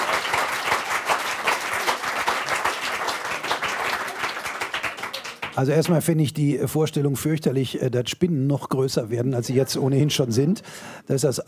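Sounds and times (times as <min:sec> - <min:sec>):
audience applause: 0:00.0 - 0:05.7
speech: 0:05.6 - 0:11.4.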